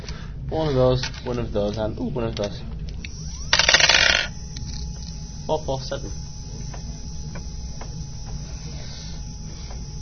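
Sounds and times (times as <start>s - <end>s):
speech: 0.5s - 2.8s, 5.5s - 6.2s
dice clattering across a hard surface: 3.6s - 4.3s.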